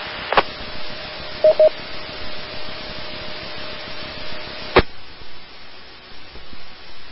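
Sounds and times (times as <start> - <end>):
hissing radio channel static: 0.0 - 1.8
APRS packet radio data transmission tone with beeps: 1.4 - 1.8.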